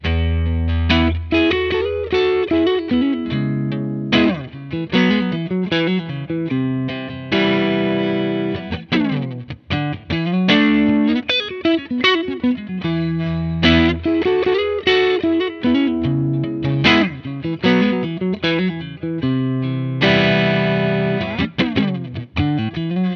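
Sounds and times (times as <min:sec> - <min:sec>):
hazy guitar amplifier recorded with sE Electronics VR2 microphone: 0:00.0 - 0:23.1.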